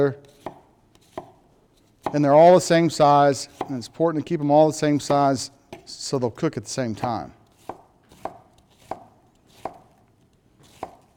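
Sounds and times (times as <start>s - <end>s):
speech: 0.0s - 0.3s, 2.1s - 7.4s
knife chopping onions on a cutting board: 0.2s - 1.4s, 2.0s - 2.3s, 3.5s - 3.8s, 7.5s - 10.0s, 10.6s - 11.1s.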